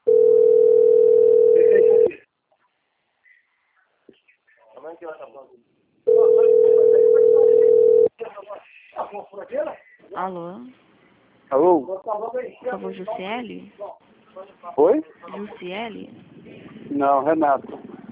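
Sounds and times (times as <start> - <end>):
telephone ringback tone while a call is being placed: 0.0 - 2.1, 6.1 - 8.1
speech: 10.2 - 10.8, 11.5 - 17.8.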